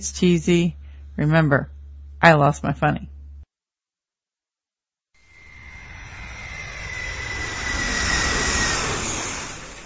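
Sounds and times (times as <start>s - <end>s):
speech: 0.0s - 3.1s
airplane engine roaring: 5.2s - 9.8s
high whining tone of airplane engine: 5.2s - 9.8s.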